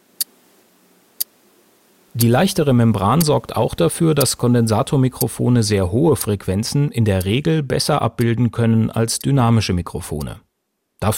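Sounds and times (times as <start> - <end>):
faint low hiss: 0.0 - 11.1
clock ticking recorded with condenser microphone: 2.2 - 9.4
speech: 2.2 - 10.4, 11.0 - 11.1.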